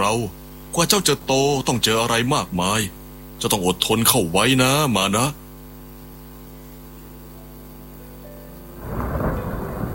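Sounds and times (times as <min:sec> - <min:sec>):
speech: 0:00.1 - 0:05.4
heavy rain: 0:08.8 - 0:09.9
strong wind: 0:08.8 - 0:09.9.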